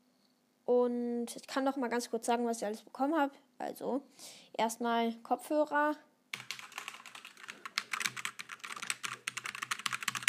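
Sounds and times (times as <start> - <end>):
speech: 0.7 - 6.1
typing on a computer keyboard: 6.4 - 10.2.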